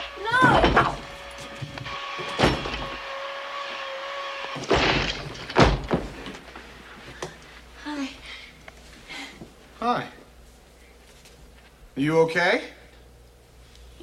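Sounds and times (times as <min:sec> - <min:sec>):
heavy thuds striking a door: 0:00.3 - 0:02.9, 0:04.6 - 0:06.3
speech: 0:12.0 - 0:12.7.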